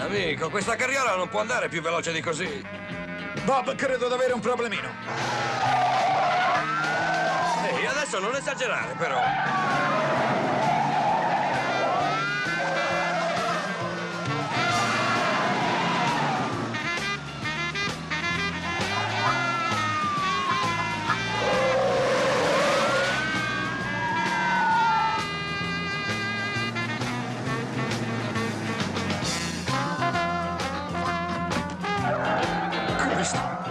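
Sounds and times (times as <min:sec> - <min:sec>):
speech: 0:00.1 - 0:02.8, 0:03.5 - 0:05.8, 0:07.9 - 0:10.2
roaring car engines: 0:04.9 - 0:33.6
tires screeching in a car chase: 0:04.9 - 0:33.6
siren-like wail: 0:05.6 - 0:17.0, 0:18.6 - 0:27.2, 0:31.5 - 0:33.6.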